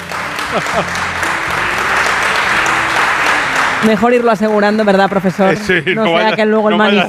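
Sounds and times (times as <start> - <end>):
audience applauding: 0.0 - 7.0
audience voices and cheers: 0.0 - 7.0
laughter: 0.1 - 7.0
speech: 0.5 - 1.2, 3.8 - 7.0.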